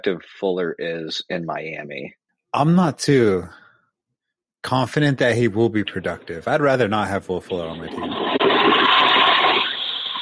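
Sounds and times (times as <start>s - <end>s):
speech: 0.0s - 3.6s, 4.6s - 8.9s
toilet flushing: 6.9s - 10.2s.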